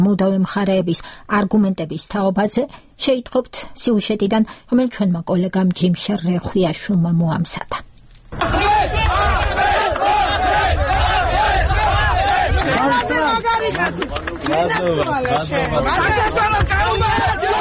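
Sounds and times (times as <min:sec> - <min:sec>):
speech: 0:00.1 - 0:09.2, 0:12.7 - 0:17.6
political party supporters shouting and cheering at a court decision: 0:08.4 - 0:17.6.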